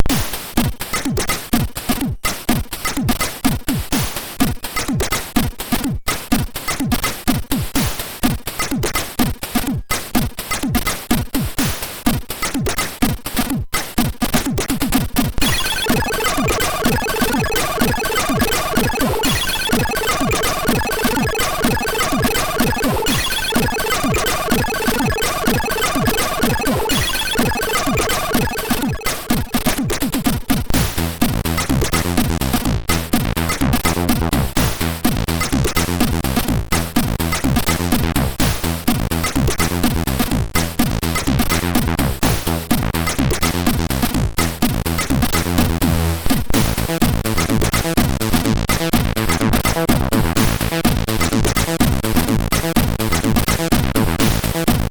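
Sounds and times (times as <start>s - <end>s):
drums from a MOS6581R3 sound chip: 0.0s - 54.8s
bass from a MOS6581R3 sound chip: 15.4s - 54.8s.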